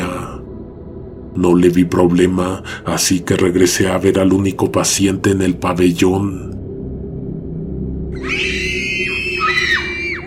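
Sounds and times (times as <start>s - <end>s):
steady low rumble: 0.0s - 9.2s
speech: 1.3s - 6.6s
children and a woman screaming: 8.2s - 10.2s.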